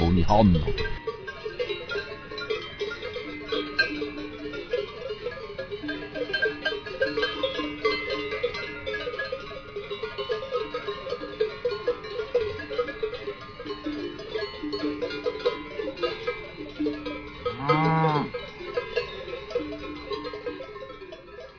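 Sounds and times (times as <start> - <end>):
cowbells clanking on a herd of cows on a farm: 0.0 - 21.5
speech: 0.2 - 1.1
cow lowing: 17.4 - 18.4.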